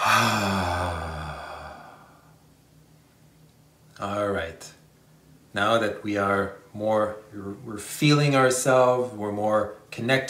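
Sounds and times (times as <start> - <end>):
deep exhale during a guided breathing exercise: 0.0 - 2.4
speech: 5.5 - 10.2.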